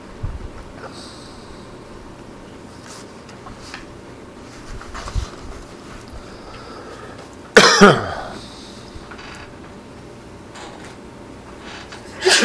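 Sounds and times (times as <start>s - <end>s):
quiet hum: 0.0s - 12.4s
sneeze or cough: 7.6s - 8.4s, 12.2s - 12.4s.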